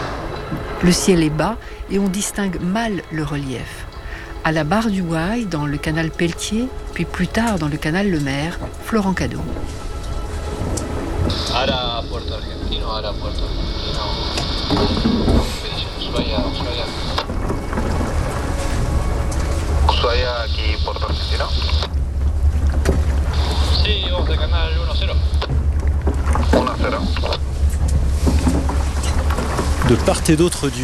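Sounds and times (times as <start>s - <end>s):
sailboat pushing through water in the Pelletier Channel: 0.0s - 30.8s
voices: 0.4s - 9.7s, 10.8s - 17.5s, 19.9s - 21.9s, 23.4s - 25.5s, 26.4s - 27.4s, 29.8s - 30.8s
speech: 0.8s - 3.8s, 4.4s - 9.8s, 11.3s - 13.8s, 14.7s - 15.5s, 20.2s - 21.9s, 24.2s - 25.5s, 26.8s - 27.4s, 29.9s - 30.8s.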